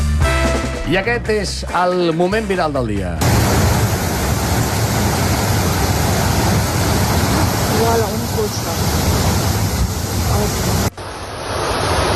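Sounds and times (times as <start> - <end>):
speech: 0.9 - 3.4, 7.8 - 9.1
torrential floodwater rushing down a stream bed: 3.2 - 12.1.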